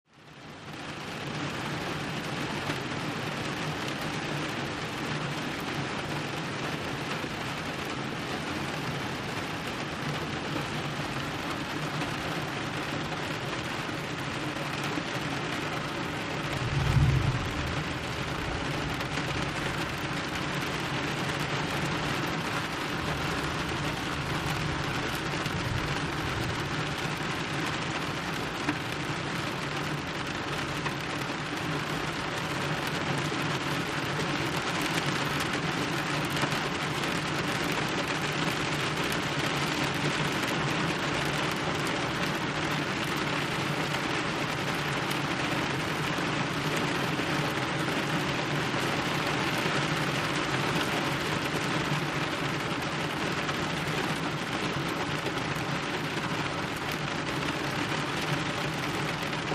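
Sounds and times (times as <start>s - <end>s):
steady heavy rain: 0.1s - 59.5s.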